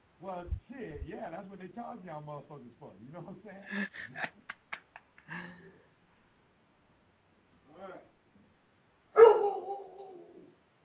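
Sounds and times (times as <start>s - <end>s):
speech: 0.2s - 4.6s, 7.8s - 8.1s
dog barking: 9.2s - 10.2s.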